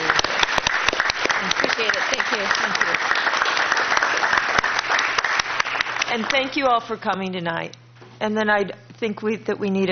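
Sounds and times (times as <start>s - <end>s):
crowd applauding: 0.0s - 6.5s
speech: 6.2s - 9.8s.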